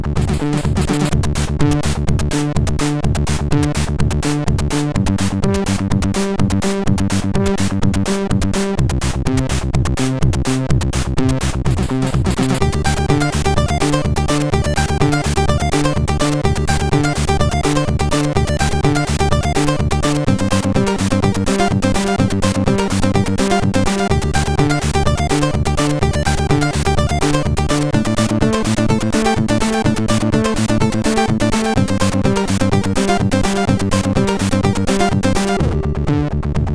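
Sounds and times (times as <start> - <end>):
techno music on a MOS6581R4 SID chip: 0.2 - 36.7.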